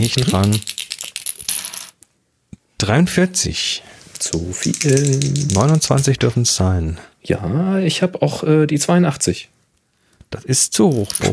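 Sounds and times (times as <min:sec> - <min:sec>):
speech: 0:00.0 - 0:00.7, 0:02.9 - 0:09.6, 0:10.3 - 0:11.3
dice rattling and clattering across a hard surface: 0:00.0 - 0:02.0, 0:04.2 - 0:06.1, 0:10.8 - 0:11.3
small clicks of dice settling: 0:00.0 - 0:02.1, 0:04.2 - 0:06.1.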